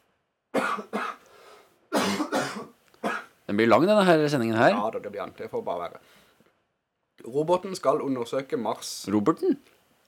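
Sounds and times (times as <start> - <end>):
person coughing dry and harsh: 0.6 - 1.2, 1.9 - 3.3
speech: 3.5 - 6.2, 7.2 - 9.8.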